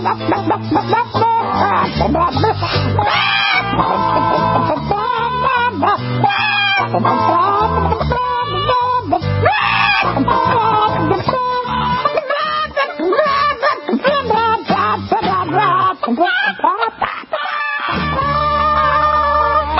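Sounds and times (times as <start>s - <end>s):
loud bouncy novelty song: 0.0s - 17.2s
laughter: 0.0s - 19.7s
voices singing: 0.0s - 19.7s
chicken clucks and squawks in the music: 0.3s - 19.7s.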